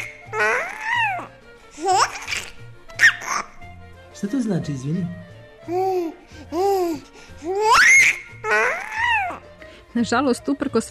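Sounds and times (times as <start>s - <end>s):
baby babbling and giggling: 0.0s - 3.6s, 5.7s - 9.4s
speech: 4.2s - 8.1s, 10.0s - 10.8s.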